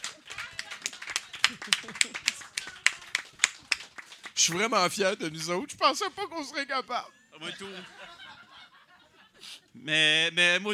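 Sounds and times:
laughter: 0.0s - 3.4s, 4.4s - 9.8s
group applauding itself: 0.0s - 6.3s
speech: 1.5s - 2.5s, 4.4s - 8.0s, 9.8s - 10.7s.

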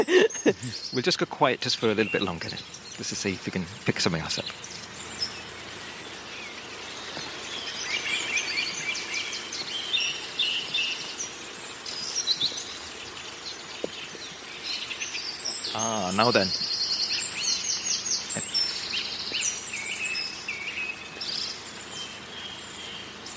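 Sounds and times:
laughter: 0.0s - 1.0s
speech: 0.0s - 4.9s, 15.8s - 16.6s
other birds: 0.0s - 23.3s
reed or sedge warbler singing: 0.0s - 23.3s.

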